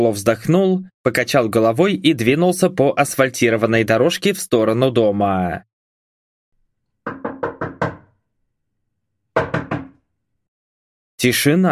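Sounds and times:
speech: 0.0 - 5.7, 11.2 - 11.6
knocking on a house door: 7.0 - 8.2, 9.3 - 10.0.

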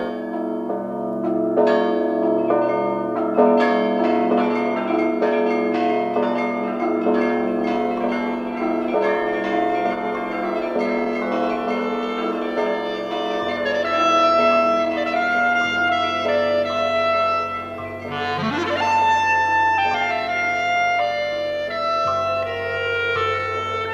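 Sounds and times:
church bells ringing for the Saturday evening vigil service: 0.0 - 23.9.

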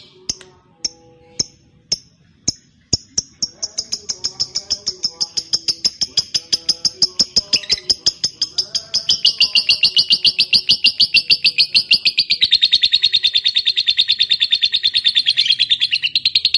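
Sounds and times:
fighter-type lovebird sharp clicks: 0.3 - 3.5
fighter-type lovebird singing energetically with high shrill chirps: 2.9 - 16.5.

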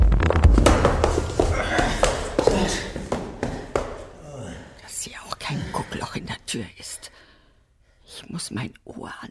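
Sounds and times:
footsteps in a hallway: 0.2 - 4.8
speech: 6.6 - 7.0, 8.4 - 9.2.

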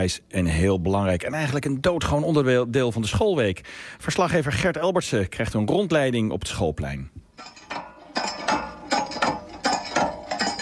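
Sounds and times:
speech: 0.0 - 7.6
hand water pump being worked to draw water on a schoolyard: 7.4 - 10.6.

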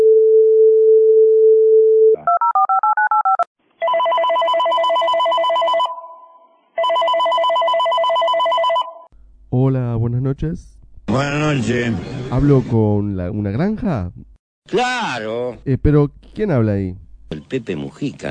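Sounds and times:
telephone dial tone: 0.0 - 6.0, 6.8 - 9.1
speech: 10.4 - 18.2.

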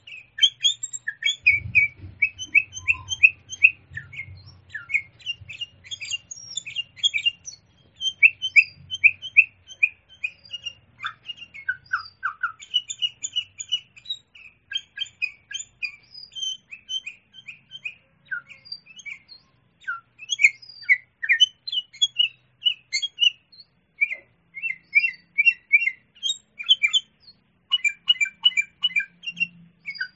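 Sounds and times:
sooty-headed bulbul song: 0.0 - 30.1.

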